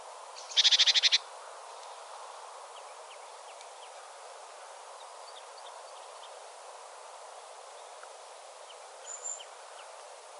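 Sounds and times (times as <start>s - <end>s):
great tit giving a harsh churring call: 0.4s - 1.2s.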